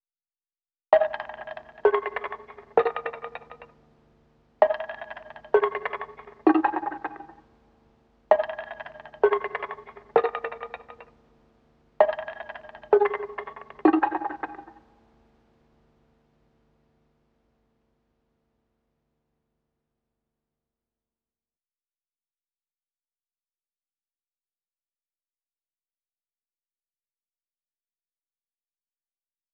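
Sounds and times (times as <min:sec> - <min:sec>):
bell hit loop in G sharp minor: 0:01.0 - 0:03.7, 0:04.6 - 0:07.4, 0:08.3 - 0:11.0, 0:12.0 - 0:14.8.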